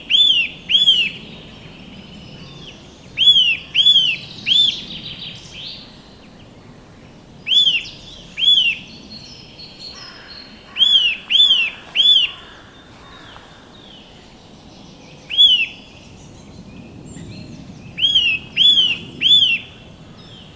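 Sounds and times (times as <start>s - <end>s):
Eurasian nuthatch Sitta europaea giving clear loud whistled calls: 0.1s - 1.3s, 2.4s - 5.8s, 7.5s - 9.0s, 9.8s - 12.6s, 15.3s - 15.9s, 18.0s - 19.8s.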